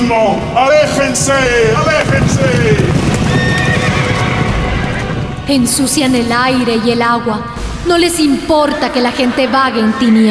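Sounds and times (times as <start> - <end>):
speech: 0.1 - 3.5, 5.5 - 10.2
horses galloping: 0.1 - 6.4
horse whinnying: 1.8 - 5.5.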